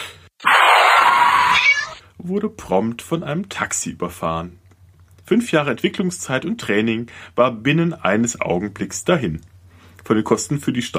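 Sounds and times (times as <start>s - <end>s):
cat meowing loudly: 0.4s - 2.0s
speech: 2.2s - 4.6s, 5.3s - 10.9s.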